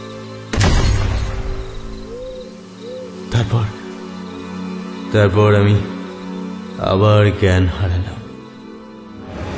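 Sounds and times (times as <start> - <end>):
deafening gunshot: 0.5 - 1.6
speech: 3.4 - 3.8, 5.1 - 5.9, 6.8 - 8.2.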